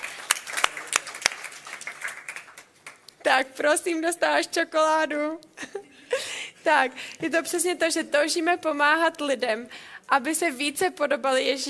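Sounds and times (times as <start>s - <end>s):
small audience applauding: 0.0s - 3.0s
speech: 3.4s - 11.6s.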